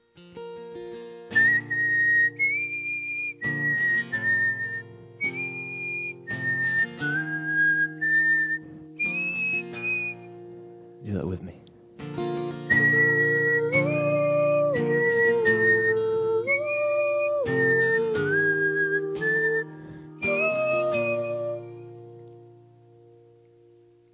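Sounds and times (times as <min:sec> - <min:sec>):
crowd whistling a bright steady melody together: 0:01.3 - 0:10.4, 0:12.7 - 0:21.8
person speaking a brief spoken line: 0:11.0 - 0:11.8.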